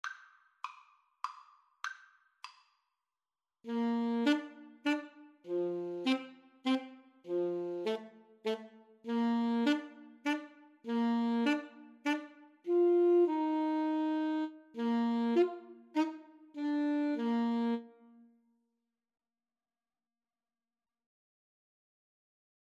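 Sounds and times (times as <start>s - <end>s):
clarinet and saxophone duet: 3.7s - 18.3s.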